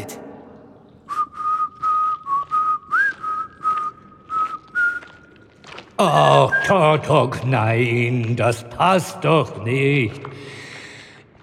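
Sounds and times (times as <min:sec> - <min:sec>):
person whistling a short tune: 0:01.1 - 0:05.2
speech: 0:06.0 - 0:10.6.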